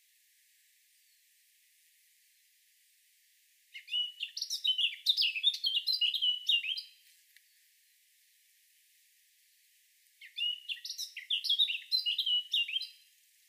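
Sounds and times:
Eurasian blackcap Sylvia atricapilla singing: 3.8s - 7.0s, 10.2s - 13.0s.

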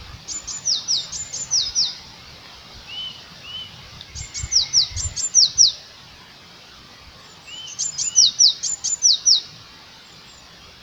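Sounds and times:
Eurasian blue tit Cyanistes caeruleus singing high thin notes: 0.3s - 2.0s, 2.9s - 5.8s, 7.5s - 9.5s.

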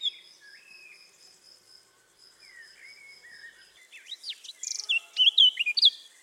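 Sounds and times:
Eurasian blackcap Sylvia atricapilla song: 0.0s - 1.0s, 2.4s - 6.2s.

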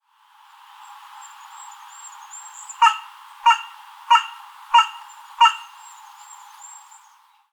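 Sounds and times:
carrion crow cawing harshly: 2.8s - 5.8s.

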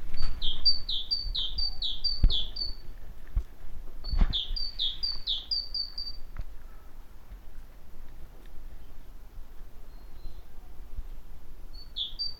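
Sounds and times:
great tit song: 0.2s - 2.9s, 4.0s - 6.3s, 11.7s - 12.3s.

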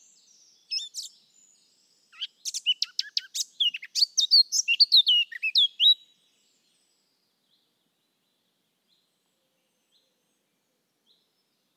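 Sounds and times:
Eurasian blackcap song: 0.0s - 7.0s.

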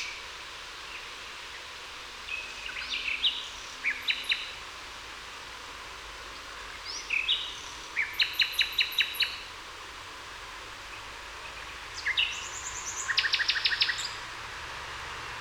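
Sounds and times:
background hiss: 0.0s - 15.4s
common nightingale Luscinia megarhynchos singing: 2.3s - 4.6s, 6.3s - 9.5s, 10.9s - 14.3s.

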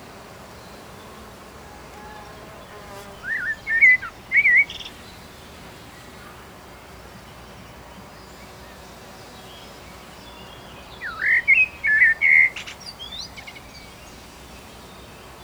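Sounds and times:
common blackbird Turdus merula singing: 3.2s - 5.2s, 10.8s - 13.8s.

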